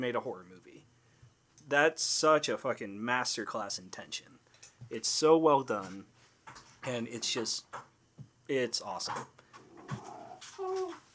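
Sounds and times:
speech: 0:00.0 - 0:00.9, 0:01.7 - 0:07.9, 0:08.5 - 0:10.7
dog whining and whimpering: 0:09.7 - 0:11.1.

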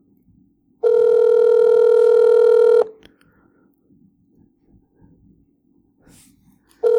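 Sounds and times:
phone ringback tone on unanswered outgoing call: 0:00.8 - 0:03.0.

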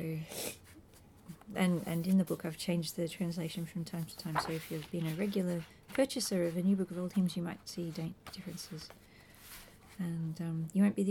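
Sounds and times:
speech: 0:00.0 - 0:00.5, 0:01.5 - 0:09.1, 0:10.0 - 0:11.0
person sneezing: 0:00.2 - 0:00.6.

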